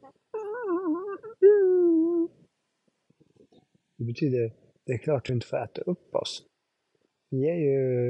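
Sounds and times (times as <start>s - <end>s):
person's voice imitating a big dog howling: 0.4s - 2.3s
speech: 4.1s - 6.5s, 7.3s - 8.0s.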